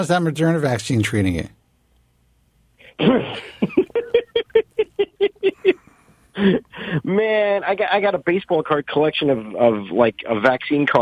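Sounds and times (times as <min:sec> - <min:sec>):
speech: 0:00.0 - 0:01.6, 0:03.0 - 0:04.2, 0:06.4 - 0:11.0
person coughing: 0:03.0 - 0:03.5
laughter: 0:03.0 - 0:06.7.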